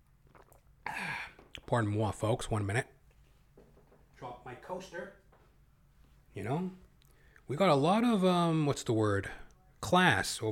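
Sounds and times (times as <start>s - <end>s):
short slurping sip of water: 0.0s - 0.9s
speech: 1.7s - 3.0s, 4.5s - 5.2s, 6.4s - 6.8s, 7.5s - 10.5s.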